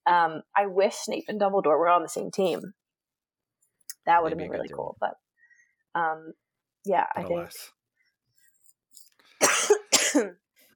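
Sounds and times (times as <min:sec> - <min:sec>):
speech: 0:00.1 - 0:02.8, 0:04.0 - 0:05.2, 0:06.0 - 0:07.8, 0:09.6 - 0:10.4
person coughing forcefully: 0:09.4 - 0:10.4.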